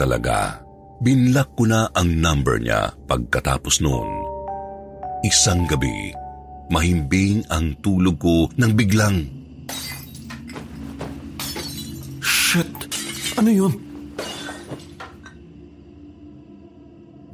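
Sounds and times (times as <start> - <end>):
speech: 0.0 - 4.2, 5.2 - 9.8, 12.5 - 13.8
glass shards falling: 9.7 - 15.3
window glass shattering: 9.7 - 15.4.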